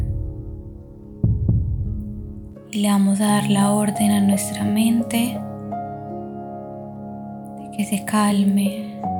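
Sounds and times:
deep heartbeat thumping: 0:00.0 - 0:02.6
speech: 0:02.7 - 0:05.5, 0:07.8 - 0:09.1.

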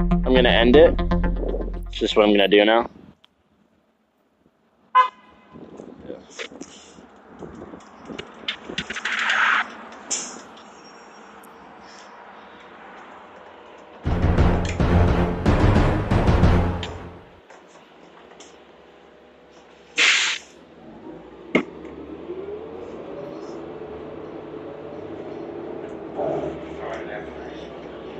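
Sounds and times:
speech: 0:00.4 - 0:01.0, 0:01.9 - 0:03.0
loud hissing burst of air as city bus doors open: 0:06.3 - 0:07.1, 0:10.1 - 0:10.6, 0:19.5 - 0:20.6
city bus engine rumbling, whining and idling: 0:06.4 - 0:28.1
city bus horn toot: 0:14.1 - 0:17.4.

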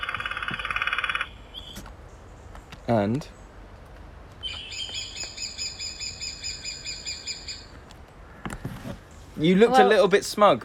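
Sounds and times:
woodpecker calling: 0:00.0 - 0:03.6, 0:04.4 - 0:09.2
speech: 0:02.9 - 0:03.4, 0:09.4 - 0:10.6.

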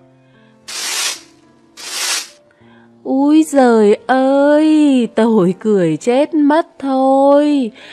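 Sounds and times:
broom swishing in a kitchen corner: 0:00.7 - 0:02.4
speech: 0:03.0 - 0:07.9.

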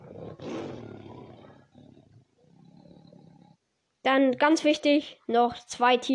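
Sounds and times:
tiger roaring: 0:00.0 - 0:03.6
speech: 0:04.0 - 0:06.1.

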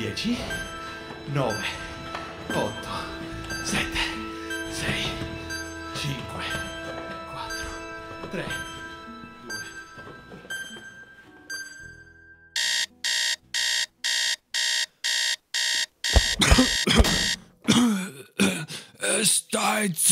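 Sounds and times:
soft chiming tones: 0:00.0 - 0:12.4
alarm clock beeping: 0:00.0 - 0:17.5
speech: 0:00.1 - 0:01.8, 0:02.5 - 0:04.1, 0:06.0 - 0:06.8, 0:08.3 - 0:08.7, 0:19.6 - 0:20.1
person groaning: 0:17.7 - 0:19.2.

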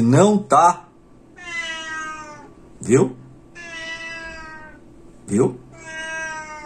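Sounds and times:
speech: 0:00.0 - 0:00.9, 0:02.8 - 0:03.2, 0:05.3 - 0:05.6
faint low hum: 0:00.0 - 0:06.6
pet cat meowing: 0:01.3 - 0:02.6, 0:03.5 - 0:04.9, 0:05.7 - 0:06.6.

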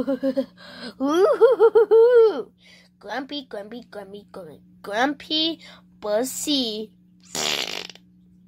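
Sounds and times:
speech: 0:00.0 - 0:07.6
blown raspberry mouth-made fart noise: 0:07.2 - 0:08.1.

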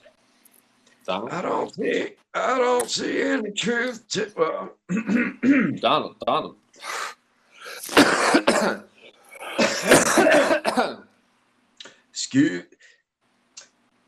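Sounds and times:
speech: 0:01.1 - 0:07.0, 0:07.9 - 0:08.9, 0:09.8 - 0:11.1, 0:12.2 - 0:12.8
person clearing their throat: 0:04.9 - 0:05.8, 0:09.4 - 0:11.0
person coughing: 0:04.9 - 0:05.8, 0:07.6 - 0:08.8, 0:09.4 - 0:11.0.

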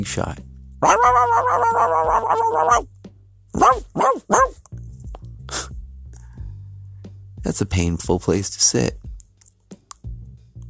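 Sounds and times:
speech: 0:00.0 - 0:04.7, 0:07.4 - 0:09.0
small dog yapping and barking: 0:00.8 - 0:02.9, 0:03.6 - 0:04.6.

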